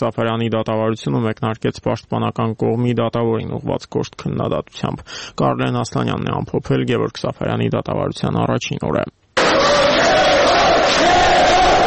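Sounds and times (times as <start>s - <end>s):
speech: 0.0s - 9.8s
crowd of supporters applauding at a court hearing: 9.4s - 11.8s.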